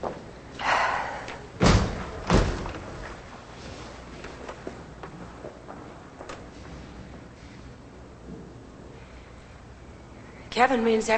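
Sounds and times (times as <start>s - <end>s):
two large heavy doors swung shut with a booming thud: 1.6s - 3.2s
speech: 10.6s - 11.1s.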